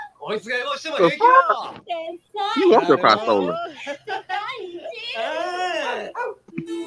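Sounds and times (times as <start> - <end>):
speech: 0.3 - 3.9
laughter: 1.0 - 1.8, 2.6 - 5.2
dog barking and yowling: 5.7 - 6.5
dog whining: 5.8 - 6.5.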